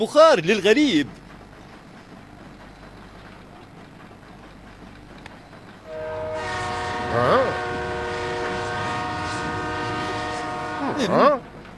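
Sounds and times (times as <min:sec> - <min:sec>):
speech: 0:00.0 - 0:01.2, 0:11.0 - 0:11.4
multi-tone horn chord of a passing train in a small town: 0:05.8 - 0:11.4.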